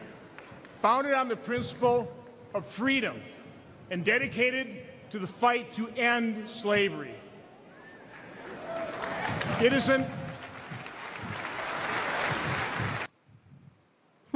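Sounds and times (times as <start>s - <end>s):
speech: 0.8s - 7.2s, 9.6s - 10.2s
large crowd cheering and applauding at a political speech: 7.8s - 13.1s.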